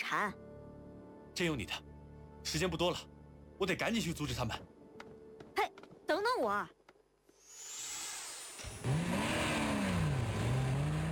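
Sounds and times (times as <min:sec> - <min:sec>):
speech: 0:00.1 - 0:00.4, 0:01.4 - 0:04.7, 0:05.6 - 0:06.8
jeep engine revving while speeding out of a parking lot: 0:08.6 - 0:11.1.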